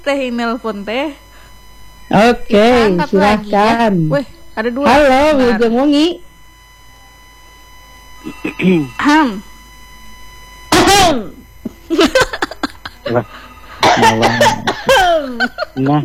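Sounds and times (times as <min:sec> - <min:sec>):
speech: 0:00.0 - 0:01.2, 0:02.1 - 0:06.3, 0:08.2 - 0:09.5, 0:11.0 - 0:12.2, 0:13.1 - 0:16.0
person coughing harshly: 0:08.2 - 0:08.9, 0:12.4 - 0:15.3
voiced wheezy vocal sounds: 0:08.2 - 0:09.0
laughter: 0:11.9 - 0:16.0.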